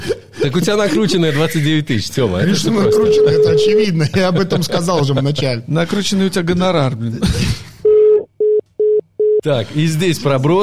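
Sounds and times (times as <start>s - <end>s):
speech: 0.4s - 7.6s, 9.4s - 10.6s
electronic telephone ringback tone of a call connecting: 7.9s - 9.4s.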